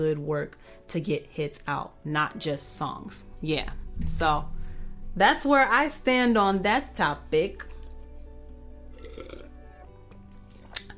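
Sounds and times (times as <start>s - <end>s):
speech: 0.0s - 4.6s, 5.2s - 7.7s
low steady hum: 3.4s - 8.7s
person sipping a drink of water with soft slurping: 7.7s - 9.8s.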